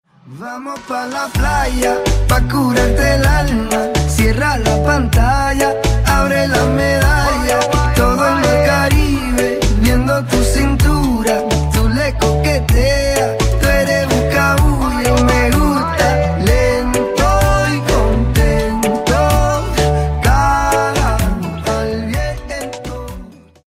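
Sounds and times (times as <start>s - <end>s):
guitar: 0.3s - 23.6s.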